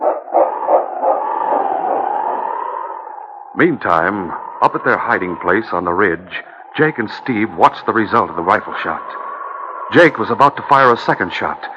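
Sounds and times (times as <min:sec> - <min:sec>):
large dog barking: 0:00.0 - 0:02.0
large dog howling: 0:00.0 - 0:11.6
speech: 0:03.6 - 0:09.2, 0:09.9 - 0:11.7.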